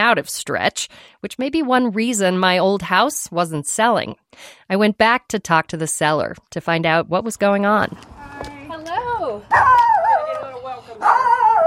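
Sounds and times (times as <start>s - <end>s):
speech: 0.0s - 8.1s, 9.4s - 9.8s
dog barking and yipping excitedly at a door: 9.5s - 11.6s.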